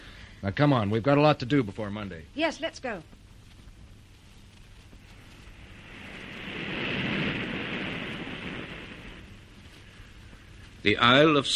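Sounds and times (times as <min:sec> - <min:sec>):
speech: 0:00.4 - 0:03.2, 0:10.8 - 0:11.5
low rumble: 0:03.1 - 0:10.8
ocean waves heard from aboard a steamer near a granite island: 0:05.1 - 0:10.0.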